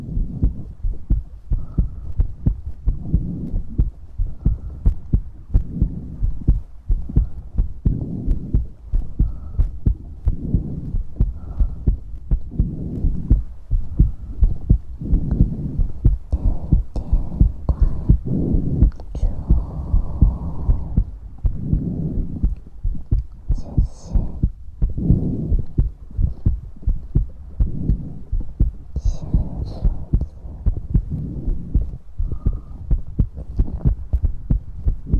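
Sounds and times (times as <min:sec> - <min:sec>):
low muffled thumping: 0:00.0 - 0:35.1
wet mouth clicks and smacks: 0:18.8 - 0:19.2.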